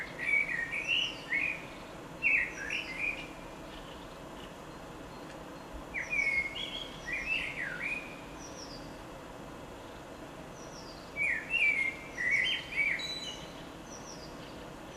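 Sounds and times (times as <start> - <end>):
common blackbird singing fluted melodious phrases: 0.0 - 9.0, 10.5 - 14.9
steady low hiss: 0.0 - 14.9.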